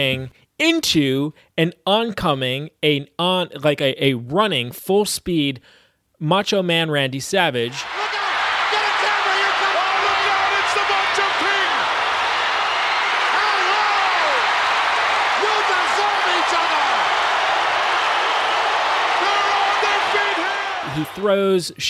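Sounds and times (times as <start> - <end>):
speech: 0.0 - 8.2, 21.0 - 21.8
individual shouts from wrestling arena crowd: 7.7 - 21.2
big wrestling arena crowd roaring and cheering: 7.7 - 21.5.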